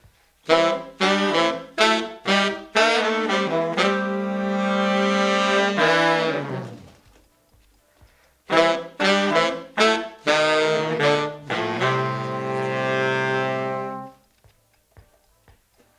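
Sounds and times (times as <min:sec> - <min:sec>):
analog funk horns: 0:00.0 - 0:07.1, 0:08.5 - 0:14.2.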